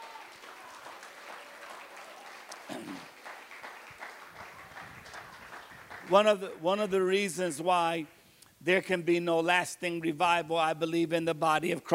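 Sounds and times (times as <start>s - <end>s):
crowd applauding: 0.0s - 7.2s
speech: 6.1s - 11.9s.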